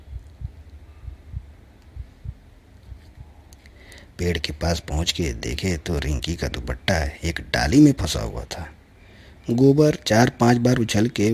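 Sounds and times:
deep heartbeat thumping in lub-dub double pulses: 0:00.0 - 0:03.4
speech: 0:04.2 - 0:08.8, 0:09.5 - 0:11.3.

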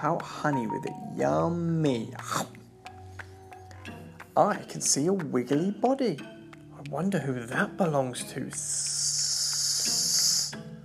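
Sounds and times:
speech: 0:00.0 - 0:02.6, 0:04.4 - 0:09.4
snake hissing as it slides through grass: 0:08.9 - 0:10.6.

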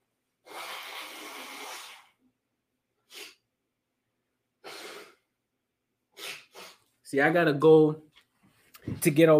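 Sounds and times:
person blowing nose: 0:00.4 - 0:02.2, 0:03.0 - 0:03.4, 0:04.6 - 0:05.3, 0:06.1 - 0:06.9
speech: 0:07.1 - 0:08.1, 0:09.0 - 0:09.3.

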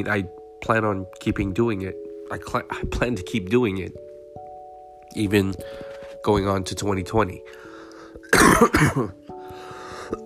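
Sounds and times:
speech: 0:00.0 - 0:04.0, 0:05.1 - 0:07.6, 0:08.3 - 0:09.2
person with the sniffles coughing harshly: 0:08.2 - 0:09.2.

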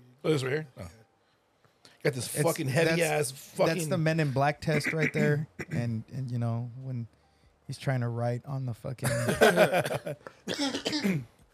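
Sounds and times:
speech: 0:00.2 - 0:01.0, 0:02.0 - 0:11.4
wet phlegmy coughing: 0:04.7 - 0:05.9, 0:10.5 - 0:11.3
laughter: 0:09.1 - 0:10.2
throat clearing: 0:10.5 - 0:11.4.

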